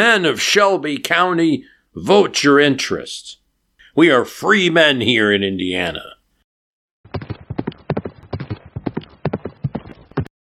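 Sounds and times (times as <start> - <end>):
speech: 0.0 - 3.4, 4.0 - 6.1
horse hooves clip-clopping: 7.1 - 10.3.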